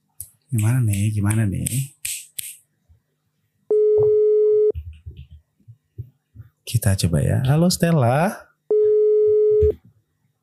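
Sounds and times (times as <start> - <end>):
speech: 0.5 - 1.9, 6.7 - 8.5
telephone ringing tone during a call: 3.7 - 4.7, 8.7 - 9.7.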